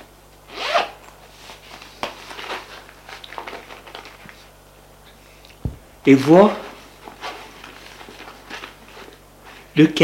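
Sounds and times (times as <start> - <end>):
schoolbag zipper being pulled open: 0.5 - 1.0
speech: 6.0 - 6.6, 9.8 - 10.0.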